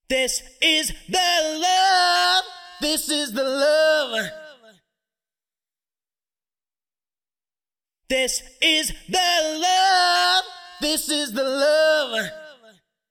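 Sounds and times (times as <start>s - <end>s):
voice: 0.1s - 4.4s, 8.1s - 12.7s.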